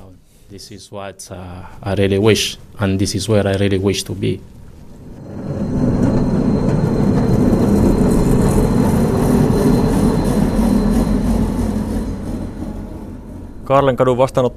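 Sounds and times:
speech: 0:00.5 - 0:04.6, 0:13.7 - 0:14.5
tram rumbling at a street stop: 0:04.2 - 0:14.5.

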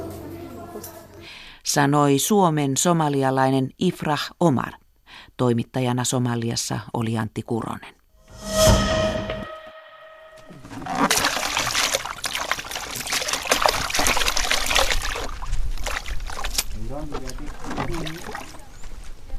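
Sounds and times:
speech: 0:01.7 - 0:07.9
brief tonal sound: 0:08.3 - 0:10.7
water trickling and splashing as someone washes face and hands in Kenya: 0:11.1 - 0:18.8.

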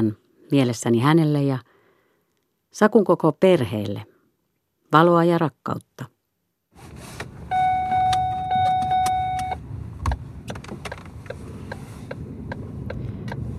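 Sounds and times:
speech: 0:00.0 - 0:01.7, 0:02.7 - 0:04.1, 0:04.9 - 0:06.1
sharp mechanical clicks of a car being started: 0:07.2 - 0:13.5.

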